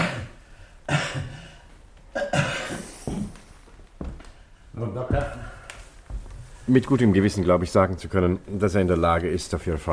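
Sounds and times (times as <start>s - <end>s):
person coughing on a doctor's request: 0.0s - 3.4s
speech: 4.8s - 5.4s, 6.7s - 9.9s.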